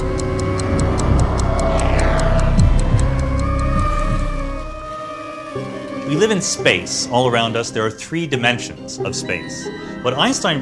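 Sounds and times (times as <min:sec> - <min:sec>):
clock ticking: 0:00.0 - 0:05.0
dense low droning musical backdrop with sliding tones: 0:00.0 - 0:10.3
speech: 0:06.2 - 0:10.6.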